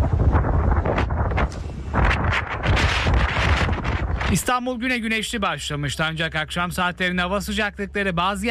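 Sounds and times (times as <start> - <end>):
strong gusting wind buffeting the microphone: 0.0 - 4.8
speech: 4.3 - 8.4.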